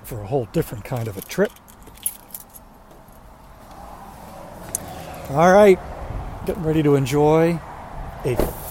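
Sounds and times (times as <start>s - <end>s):
speech: 0.1s - 1.6s, 5.3s - 8.6s
car keys jangling as they are picked up: 0.9s - 3.3s.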